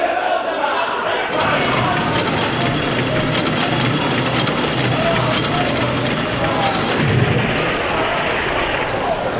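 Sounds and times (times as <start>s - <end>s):
crowd-like clamor: 0.0s - 9.3s
loud burst: 1.3s - 9.3s
rockets being fired: 7.0s - 9.3s.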